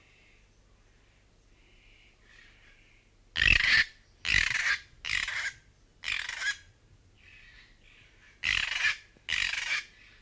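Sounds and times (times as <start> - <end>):
North Island kaka giving harsh rasping squawks: 3.4 - 6.6, 8.4 - 9.9.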